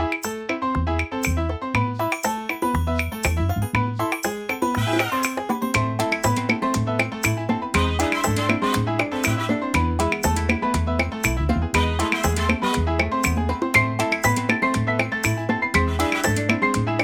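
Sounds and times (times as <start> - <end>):
salsa ringtone on a Tecno Phantom V Fold: 0.1 - 17.0.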